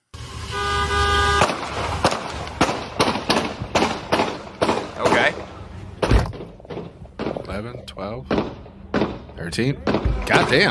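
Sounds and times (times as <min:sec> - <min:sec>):
car horn blaring: 0:00.2 - 0:01.6
rapid series of sharp loud gunshots: 0:01.4 - 0:07.5, 0:08.3 - 0:10.6
speech: 0:09.4 - 0:10.6.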